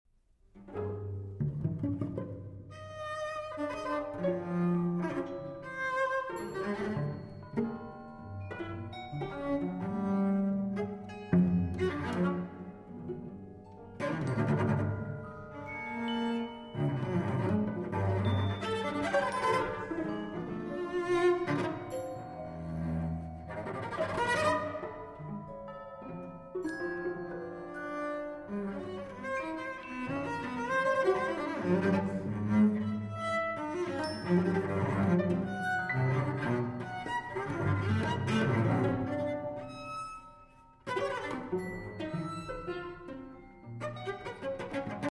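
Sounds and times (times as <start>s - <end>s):
cello with two orchestras: 0.4s - 45.0s.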